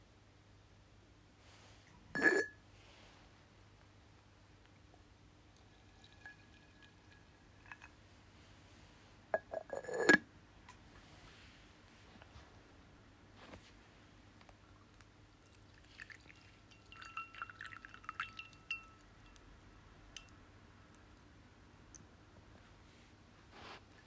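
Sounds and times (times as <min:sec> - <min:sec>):
low steady hum: 0:00.0 - 0:24.0
ceramic teaware clinking as it is set down and moved: 0:02.2 - 0:02.5, 0:05.6 - 0:07.9, 0:09.3 - 0:10.2, 0:15.9 - 0:19.4
tea pouring into a bowl: 0:05.5 - 0:08.0, 0:14.9 - 0:19.5.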